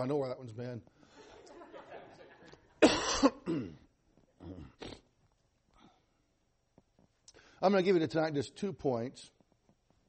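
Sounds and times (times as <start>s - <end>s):
speech: 0.0s - 1.0s, 3.2s - 3.8s, 7.6s - 9.4s
laughter: 1.2s - 2.8s
harsh coughing and throat-clearing coughs: 2.8s - 5.0s.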